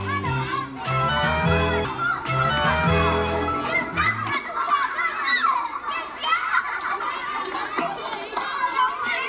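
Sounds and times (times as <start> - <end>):
children playing and climbing on a sculpture, chattering and shouting: 0.0 - 9.2.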